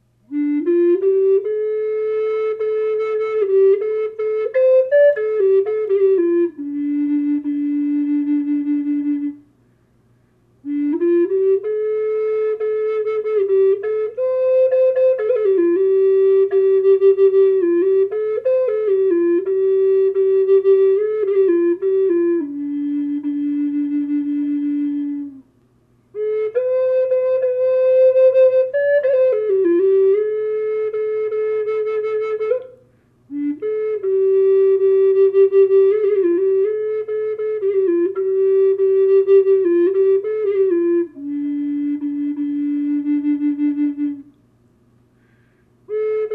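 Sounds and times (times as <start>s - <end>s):
low D flute playing dry in a minor key: 0.0s - 9.6s, 10.6s - 44.5s, 45.2s - 46.3s.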